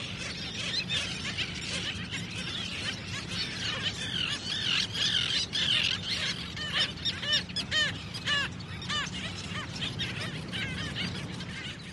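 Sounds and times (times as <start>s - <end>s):
seabirds calling at ocean's edge: 0.0s - 11.9s.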